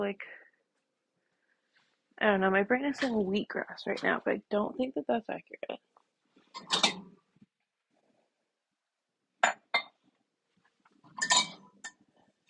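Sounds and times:
speech: 0:00.0 - 0:00.4, 0:02.2 - 0:05.9, 0:06.6 - 0:07.1
pans clinking on metal hooks of a hanging rack in an apartment kitchen: 0:06.6 - 0:07.0, 0:11.2 - 0:11.7.

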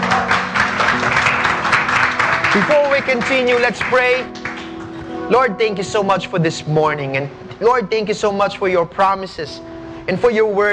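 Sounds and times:
church audience applause: 0:00.0 - 0:05.0
speech: 0:02.6 - 0:04.4, 0:05.3 - 0:10.7.

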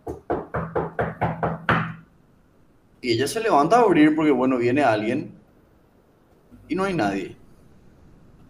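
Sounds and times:
knocking on the wooden doors of a house: 0:00.0 - 0:02.0
speech: 0:03.0 - 0:05.4, 0:06.7 - 0:07.4.

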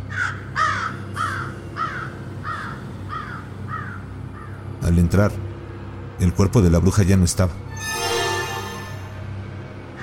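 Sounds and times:
crow cawing: 0:00.1 - 0:04.6
speech: 0:04.9 - 0:05.5, 0:06.2 - 0:08.0.

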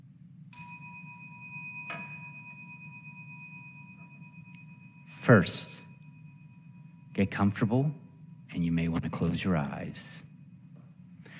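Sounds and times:
low hum: 0:00.0 - 0:11.3
meditation bell ringing to begin a Tonglen meditation practice: 0:00.5 - 0:11.3
speech: 0:05.3 - 0:05.8, 0:07.2 - 0:08.0, 0:08.6 - 0:10.3.

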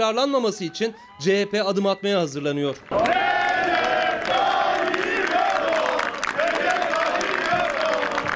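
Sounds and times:
speech: 0:00.0 - 0:03.2
large crowd of civilians chanting slogans in unison in a mausoleum courtyard: 0:02.9 - 0:08.3.

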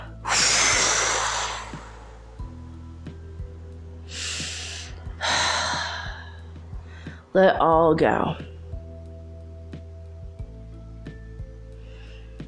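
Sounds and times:
soft hissing exhalations: 0:00.0 - 0:02.4, 0:04.1 - 0:07.2
deep breath drawn in: 0:00.0 - 0:02.6, 0:04.1 - 0:07.3, 0:11.6 - 0:12.4
speech: 0:07.4 - 0:08.5.

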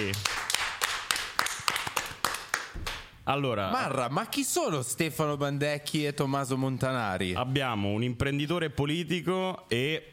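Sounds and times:
group applauding to welcome two guests: 0:00.0 - 0:03.2
speech: 0:03.3 - 0:10.1.

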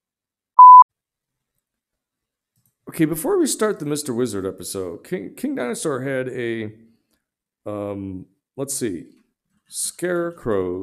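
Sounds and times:
single clean electronic beep at a steady mid pitch: 0:00.6 - 0:00.8
speech: 0:02.9 - 0:06.9, 0:07.6 - 0:10.8.

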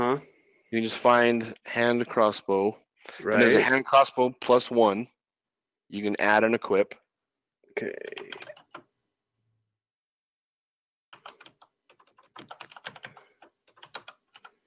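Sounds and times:
speech: 0:00.1 - 0:05.1, 0:05.9 - 0:07.0, 0:07.8 - 0:08.5
computer keyboard typing: 0:07.9 - 0:08.9, 0:11.1 - 0:14.6.

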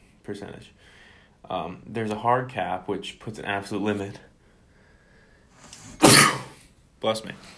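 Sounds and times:
speech: 0:00.2 - 0:04.3, 0:07.0 - 0:07.5
loud sneeze: 0:05.8 - 0:06.7.

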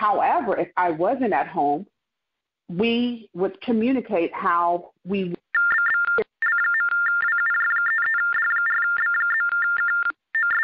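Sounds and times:
speech: 0:00.0 - 0:01.9, 0:02.7 - 0:05.4
mobile phone ringing with an electronic ringtone: 0:05.5 - 0:10.6.

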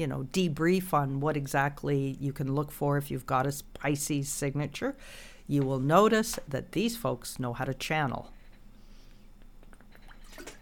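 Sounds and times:
speech: 0:00.0 - 0:08.4
low hum: 0:00.0 - 0:10.6
person sipping water: 0:09.6 - 0:10.6
soft gulp: 0:09.6 - 0:10.6.

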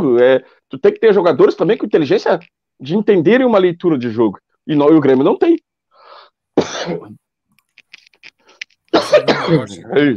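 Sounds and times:
speech: 0:00.1 - 0:05.7, 0:06.6 - 0:07.2, 0:09.0 - 0:10.1
heavy coughing fit with rasping coughs: 0:06.6 - 0:07.2, 0:08.9 - 0:09.9.

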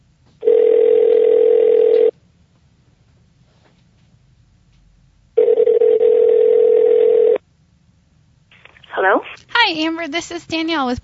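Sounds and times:
faint low hum: 0:00.0 - 0:11.0
telephone line tone buzzing: 0:00.4 - 0:02.2, 0:05.4 - 0:07.4
speech: 0:09.9 - 0:11.0.

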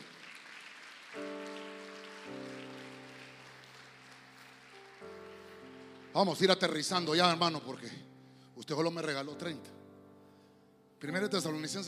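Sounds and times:
audience clapping loudly: 0:00.0 - 0:07.1
speech: 0:06.2 - 0:09.8, 0:11.0 - 0:11.8.

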